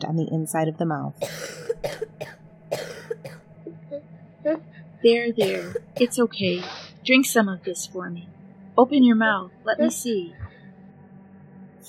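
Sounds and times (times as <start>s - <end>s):
speech: 0.0s - 2.0s, 4.4s - 10.5s
person ill with a fever sickness coughing in a settlement: 1.2s - 3.8s, 5.4s - 6.2s.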